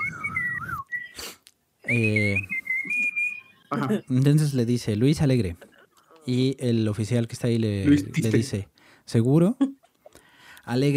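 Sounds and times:
person whistling a short tune: 0.0s - 3.8s
speech: 1.9s - 2.5s, 3.7s - 5.7s, 6.3s - 9.8s, 10.6s - 10.9s.

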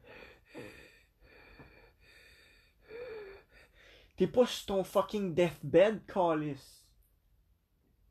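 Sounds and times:
deep breath in and out: 0.0s - 4.2s
speech: 4.2s - 6.8s.

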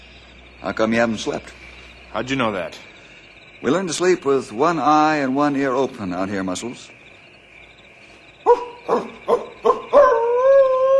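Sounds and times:
speech: 0.6s - 2.9s, 3.6s - 7.0s
wolf yipping and howling: 8.5s - 10.9s.

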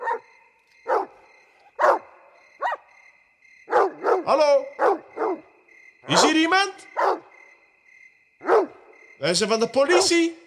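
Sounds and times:
dog on a leash barking loudly: 0.0s - 3.0s, 3.6s - 7.4s, 8.4s - 8.9s, 9.8s - 10.3s
speech: 4.2s - 5.0s, 6.1s - 7.1s, 9.2s - 10.4s.

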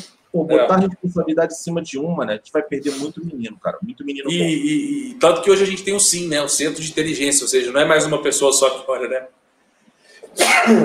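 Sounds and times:
speech: 0.4s - 9.4s, 10.3s - 10.8s
person sneezing: 2.8s - 3.1s, 10.2s - 10.8s.

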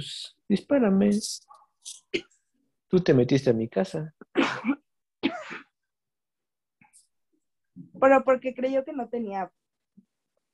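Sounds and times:
speech: 0.0s - 2.3s, 2.9s - 4.8s, 8.0s - 9.6s
harsh explosive choking coughs: 2.1s - 2.4s, 4.3s - 5.8s.

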